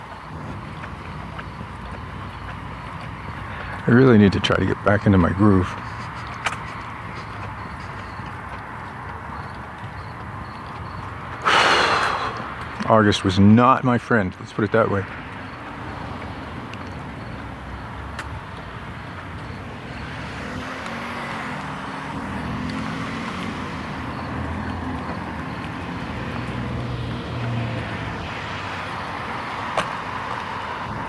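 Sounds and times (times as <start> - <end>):
cars passing at an intersection: 0.0 - 31.0
speech: 3.9 - 6.0, 12.9 - 15.2
tire hiss: 11.4 - 12.6.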